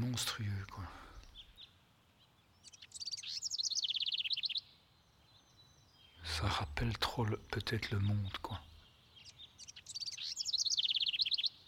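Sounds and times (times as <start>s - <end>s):
speech: 0.0s - 1.1s, 6.4s - 8.7s
bird singing a bright trill of high chirps: 2.6s - 4.6s, 9.2s - 11.5s.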